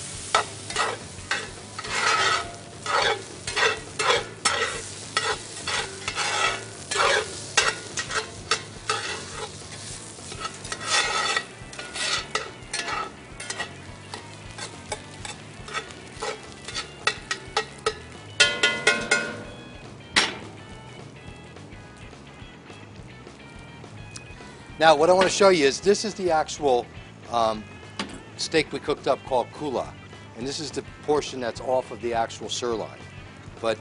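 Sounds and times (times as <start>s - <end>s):
spatula clacking and scraping against a frying pan: 0.0s - 19.8s
quiet sizzle of egg and rice in a frying pan: 0.0s - 31.4s
speech: 24.8s - 27.7s, 28.4s - 33.0s, 33.6s - 33.7s.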